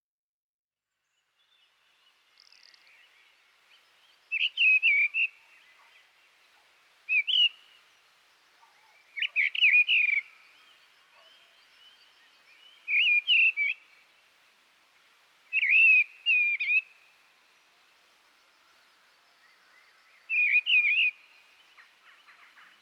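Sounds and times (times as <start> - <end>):
mistle thrush bird sounds: 2.4 - 14.1, 15.5 - 17.6, 18.4 - 22.7.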